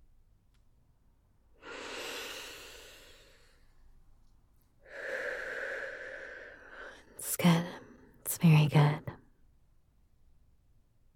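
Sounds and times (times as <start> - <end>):
deep breathing close to the microphone: 1.6 - 3.8, 4.8 - 8.0
speech: 7.4 - 7.7, 8.4 - 9.1.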